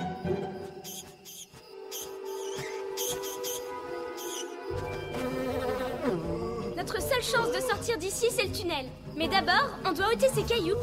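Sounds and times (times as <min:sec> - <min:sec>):
bee buzzing: 0:01.2 - 0:07.8
speech: 0:07.2 - 0:10.8.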